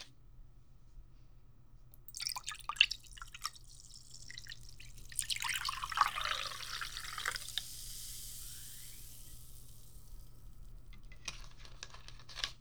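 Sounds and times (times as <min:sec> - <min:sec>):
liquid dripping: 0:01.9 - 0:11.7
drink trickling into a glass: 0:01.9 - 0:12.3.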